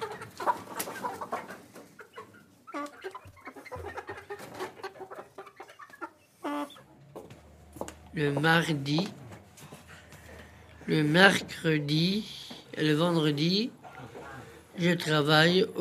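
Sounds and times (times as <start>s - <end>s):
chickens clucking and squawking: 0.0s - 15.2s
speech: 8.2s - 9.2s, 10.9s - 13.8s, 14.8s - 15.8s.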